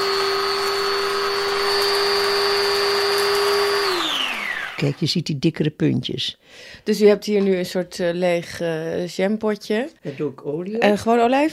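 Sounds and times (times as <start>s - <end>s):
blender grinding dried leaves: 0.0s - 5.1s
speech: 4.8s - 11.5s.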